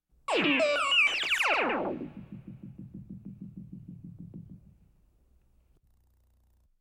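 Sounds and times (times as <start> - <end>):
science fiction kosmische electronic music: 0.3 - 4.8.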